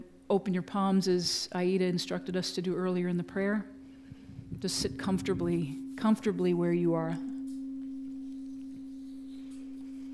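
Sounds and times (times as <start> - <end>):
speech: 0.3 - 3.8, 4.6 - 7.3
sustained singing bowl ringing tone with faint overtone: 3.7 - 10.1.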